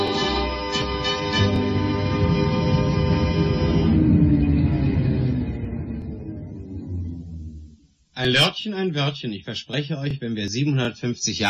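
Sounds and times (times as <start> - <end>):
tram rolling away to the depot: 0.0 - 8.0
speech: 8.2 - 11.4.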